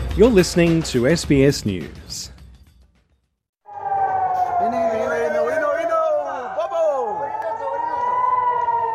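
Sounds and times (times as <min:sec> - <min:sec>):
speech: 0:00.2 - 0:02.3
air raid sirens wailing during rocket fire on southern and central Israel: 0:03.6 - 0:08.9.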